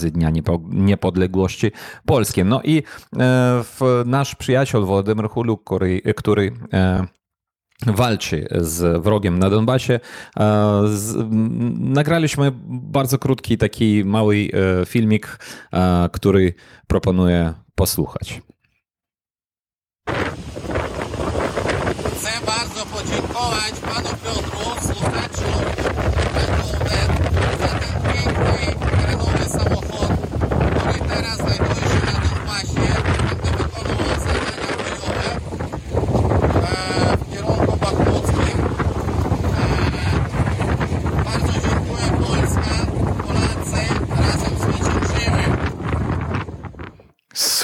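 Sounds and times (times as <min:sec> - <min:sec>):
speech: 0:00.0 - 0:07.2, 0:07.8 - 0:18.5
strong wind buffeting the microphone outdoors: 0:20.1 - 0:47.1.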